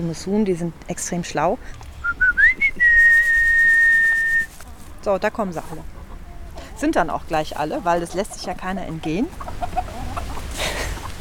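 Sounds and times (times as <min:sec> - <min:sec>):
speech: 0:00.0 - 0:02.2, 0:05.0 - 0:06.0, 0:06.8 - 0:09.9
person whistling to call chickens: 0:02.0 - 0:04.5.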